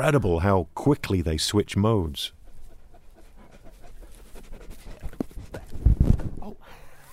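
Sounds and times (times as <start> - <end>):
speech: 0.0 - 2.4
long-coated white sheep-guarding dog panting heavily: 2.1 - 6.4
dog nipping at a microphone: 4.1 - 6.4.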